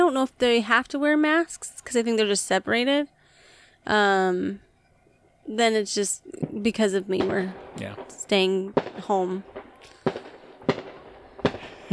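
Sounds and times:
faint noise: 0.0 - 11.9
speech: 0.1 - 3.2, 3.8 - 4.6, 5.5 - 9.6
fireworks exploding outside: 6.3 - 11.9.

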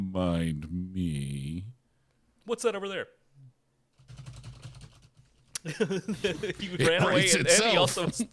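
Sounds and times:
speech: 0.2 - 1.5, 2.5 - 3.2, 5.6 - 8.3
typing on a computer keyboard while writing a script: 4.0 - 5.3
laughter: 5.6 - 8.3.

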